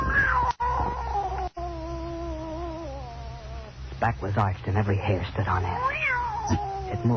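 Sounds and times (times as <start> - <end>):
scrawny cat yowling: 0.0 - 3.8, 5.6 - 7.1
speech: 4.0 - 7.1.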